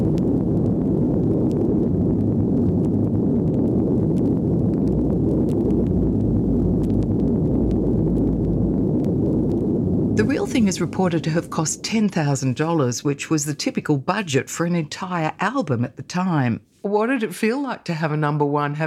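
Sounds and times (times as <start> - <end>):
atomic bomb explosion deep roaring rumble with crackling texture: 0.0 - 14.2
speech: 10.7 - 18.8.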